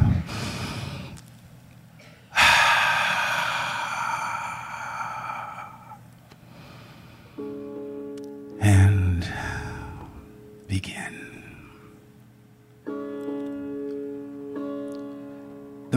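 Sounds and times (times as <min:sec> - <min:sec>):
deep breathing: 0:00.0 - 0:01.3, 0:02.3 - 0:07.5, 0:09.2 - 0:10.3.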